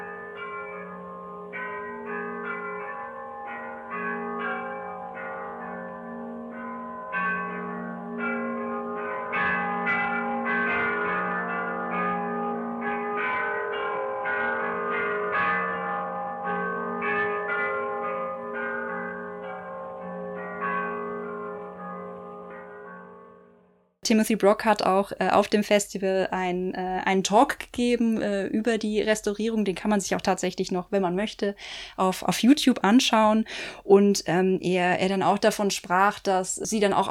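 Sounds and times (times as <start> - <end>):
church bells ringing in a bell tower around a square in Bologna: 0.0 - 23.8
speech: 24.1 - 37.0.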